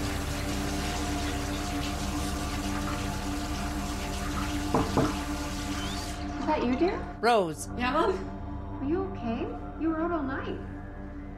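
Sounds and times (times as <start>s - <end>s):
tap water running into a bathroom sink: 0.0s - 7.1s
speech: 4.8s - 5.2s, 6.5s - 10.7s.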